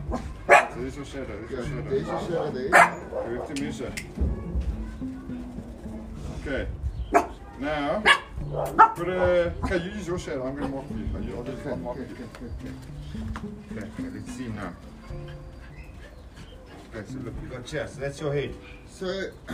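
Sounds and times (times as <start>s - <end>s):
dog barking: 0.0s - 0.8s, 2.2s - 3.8s, 7.1s - 7.4s, 8.0s - 9.1s
speech: 0.9s - 4.3s, 6.4s - 6.8s, 7.6s - 15.5s, 17.0s - 19.5s.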